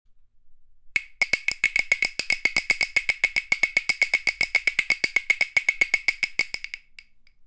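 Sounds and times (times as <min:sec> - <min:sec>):
shaker drum: 0:01.0 - 0:07.2.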